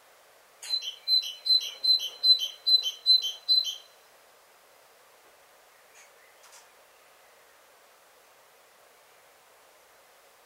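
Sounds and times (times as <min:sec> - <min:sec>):
Parus major great tit harsh buzzy calls: 0:00.6 - 0:04.0.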